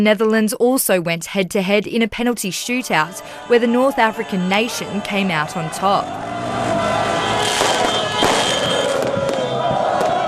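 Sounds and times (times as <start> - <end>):
speech: 0.0 - 6.4
dense noisy outdoor crowd roar: 2.6 - 10.2
fireworks bursting outdoors: 7.2 - 10.2.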